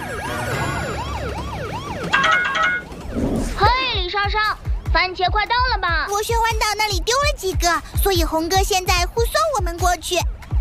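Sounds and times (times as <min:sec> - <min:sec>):
police siren cycling rapidly up and down: 0:00.0 - 0:06.0
speech: 0:04.9 - 0:10.4.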